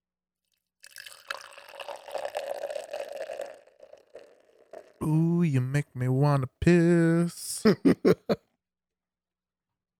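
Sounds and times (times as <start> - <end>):
hazy unfiltered IPA pouring into a glass: 0.8 - 5.3
fizzing bubbles of poured IPA: 0.9 - 5.0
speech: 5.0 - 8.4
laughter: 6.2 - 8.4.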